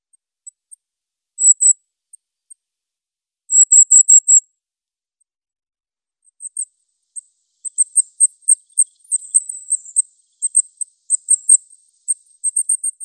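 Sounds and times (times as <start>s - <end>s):
Goldcrest giving shrill vibrant jerky calls: 6.4s - 13.0s.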